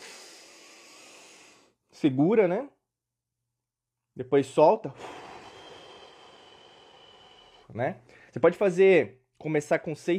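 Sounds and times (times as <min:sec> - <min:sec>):
slow deep inhalation through the mouth in a breathing exercise: 0:00.0 - 0:01.8, 0:04.9 - 0:08.4
speech: 0:02.0 - 0:02.8, 0:04.2 - 0:05.2, 0:07.7 - 0:10.1.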